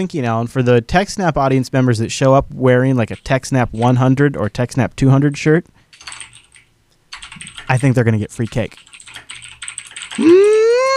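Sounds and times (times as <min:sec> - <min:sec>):
speech: 0:00.0 - 0:06.2, 0:07.4 - 0:08.9
computer keyboard clicks: 0:03.0 - 0:04.1, 0:05.9 - 0:10.9.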